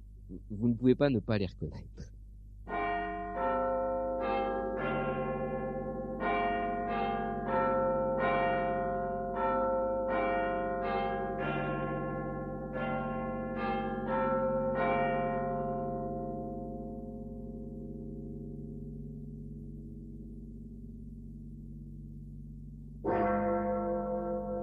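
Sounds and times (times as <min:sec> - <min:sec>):
speech: 0:00.3 - 0:02.1
large tower bells chiming a melody: 0:02.7 - 0:20.4, 0:23.0 - 0:24.6.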